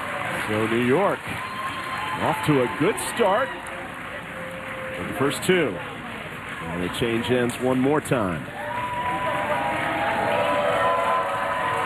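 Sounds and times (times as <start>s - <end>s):
large crowd cheering and roaring at a New York sports match: 0.0s - 7.5s, 8.5s - 11.8s
speech: 0.5s - 1.6s, 2.2s - 3.7s, 5.0s - 5.9s, 6.6s - 8.6s.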